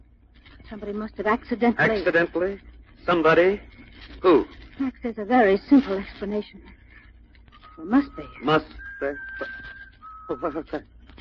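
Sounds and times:
speech: 0:00.7 - 0:06.8, 0:07.8 - 0:09.6, 0:10.3 - 0:11.2
eerie bird-like whistle: 0:07.6 - 0:10.8.

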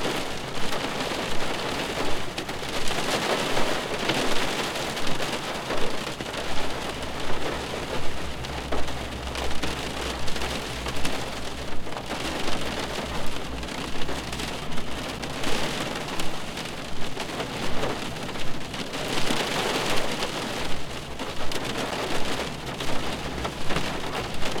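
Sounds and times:
rain pattering against a window in gusts: 0:00.0 - 0:24.5
faint low rumble: 0:05.2 - 0:24.5.

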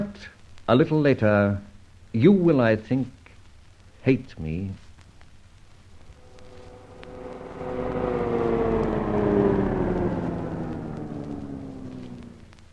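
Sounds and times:
speech: 0:00.2 - 0:03.2, 0:04.0 - 0:04.8
car engine slowing down as it pulls up at a home: 0:06.0 - 0:12.7.

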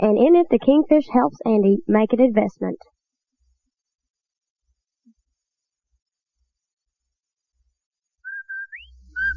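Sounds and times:
speech: 0:00.0 - 0:02.9
loud whistled advertising call: 0:08.2 - 0:09.3.

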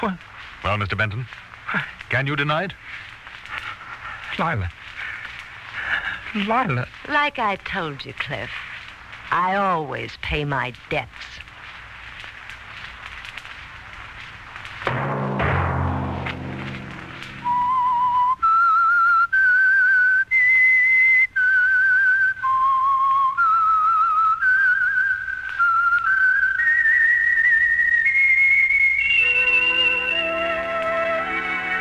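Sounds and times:
speech: 0:00.0 - 0:03.1, 0:04.4 - 0:04.9, 0:06.3 - 0:08.7, 0:09.3 - 0:11.3
orchestral music: 0:14.9 - 0:18.3, 0:29.2 - 0:31.7
solo whistled theme melody with slight echo: 0:17.4 - 0:31.7.

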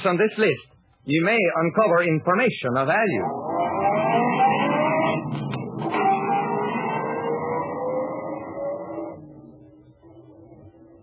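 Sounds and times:
speech: 0:00.0 - 0:03.5
car engine droning as the vehicle drives back to town: 0:03.2 - 0:11.0.

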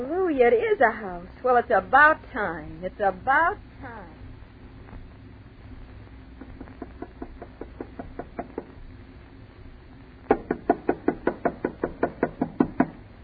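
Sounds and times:
speech: 0:00.0 - 0:04.2
knocking on a house door: 0:07.1 - 0:08.7, 0:10.3 - 0:13.0.

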